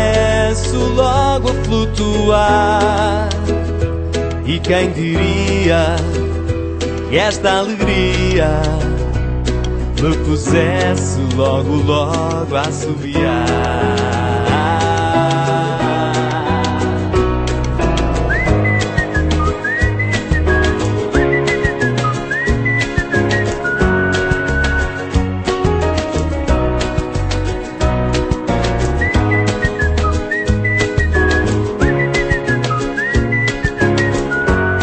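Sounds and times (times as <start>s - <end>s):
dense steady music: 0.0s - 34.8s
speech: 0.8s - 3.7s, 4.5s - 6.4s, 7.1s - 8.8s, 10.0s - 14.3s
whistled tune: 17.9s - 25.2s, 28.8s - 34.8s.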